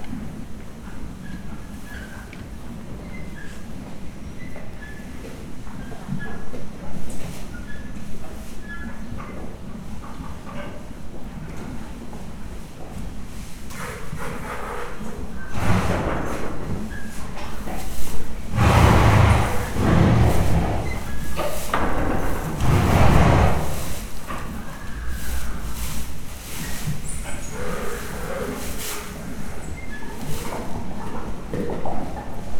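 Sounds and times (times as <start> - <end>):
horse snorting in Hortobágy National Park: 15.4 - 16.7, 18.3 - 25.8.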